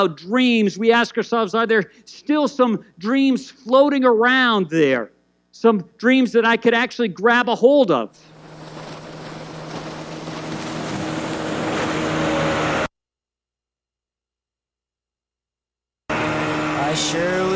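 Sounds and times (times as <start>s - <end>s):
speech: 0.0s - 8.3s
motorboat engine droning: 8.2s - 12.9s, 16.1s - 17.5s
rushing water: 8.3s - 12.9s.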